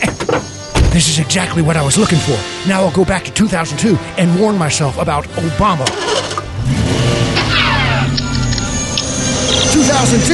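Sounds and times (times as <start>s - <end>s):
speech: 1.0s - 7.1s, 9.8s - 10.3s
clown car engine revving in a driveway as it pulls away: 5.1s - 10.3s.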